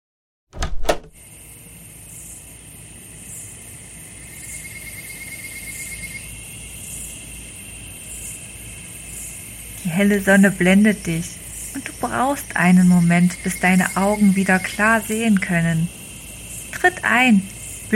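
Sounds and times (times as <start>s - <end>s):
door clicking open: 0.6s - 1.1s
speech: 10.0s - 16.0s, 16.8s - 17.9s.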